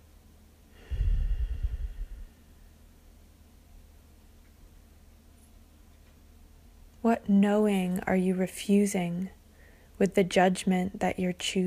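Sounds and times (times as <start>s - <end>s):
deep breath during a guided healing exercise: 0.7s - 2.8s, 9.5s - 10.0s
speech: 7.1s - 9.4s, 10.0s - 11.6s.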